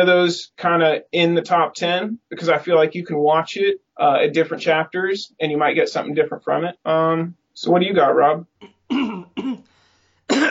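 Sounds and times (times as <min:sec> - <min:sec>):
speech: 0:00.0 - 0:09.7
throat clearing: 0:08.6 - 0:09.7, 0:10.3 - 0:10.5.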